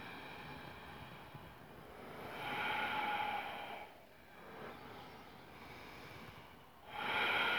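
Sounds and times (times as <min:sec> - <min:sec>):
deep rhythmic breathing close to the microphone: 0:00.0 - 0:07.5.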